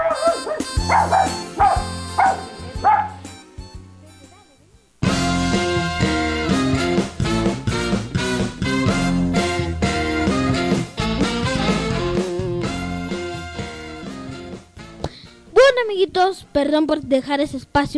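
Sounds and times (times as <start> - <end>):
rhythmic dog barks in a children's radio bumper jingle: 0.0 - 3.2
soft music in a children's radio bumper jingle: 0.0 - 17.9
loud full burst of bright music in a children's radio bumper jingle: 0.2 - 14.2
speech: 16.2 - 17.9.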